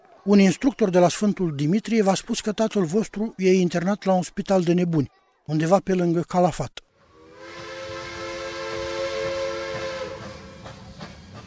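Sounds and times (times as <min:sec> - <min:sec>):
speech: 0:00.2 - 0:06.8
train horn blast: 0:07.0 - 0:10.8
train wheels clacking on rails: 0:07.6 - 0:11.4.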